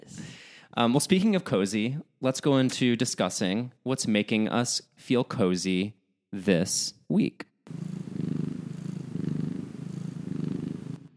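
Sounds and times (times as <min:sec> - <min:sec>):
speech: 0:00.8 - 0:07.8
cat purring: 0:07.7 - 0:11.1.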